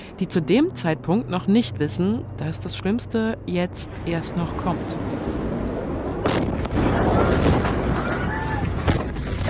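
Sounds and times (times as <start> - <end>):
speech: 0.2 - 5.3
large explosion at harbour warehouse roaring rumble: 3.8 - 9.4
sharp bangs and crackles: 5.0 - 9.4.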